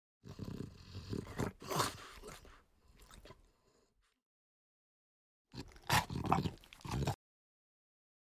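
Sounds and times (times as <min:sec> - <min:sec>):
French Bulldog grunting and snorting: 0:00.2 - 0:03.5, 0:05.6 - 0:07.2.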